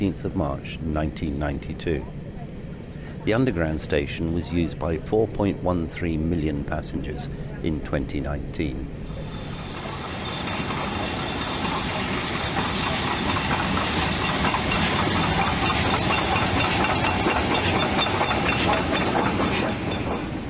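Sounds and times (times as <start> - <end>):
speech: 0.0 - 2.2, 3.2 - 9.2
passenger train constant rumble and hiss: 0.0 - 20.4
passenger train wheels clattering over rail joints and points: 9.0 - 20.4.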